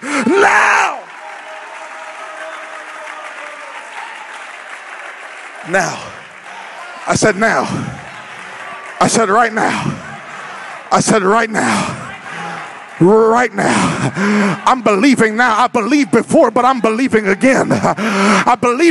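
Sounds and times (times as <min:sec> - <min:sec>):
congregation shouting: 0:00.0 - 0:03.8, 0:06.5 - 0:14.9
congregation clapping: 0:00.0 - 0:18.8
speech: 0:05.7 - 0:06.1, 0:07.1 - 0:08.0, 0:09.0 - 0:10.0, 0:10.9 - 0:11.9, 0:13.0 - 0:18.8.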